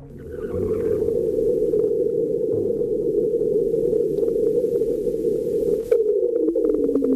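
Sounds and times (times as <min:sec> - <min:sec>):
slowly falling tone in a marsquake seismic signal: 0:00.0 - 0:05.2
marsquake seismic signal played as a low rumbling drone: 0:00.0 - 0:07.1.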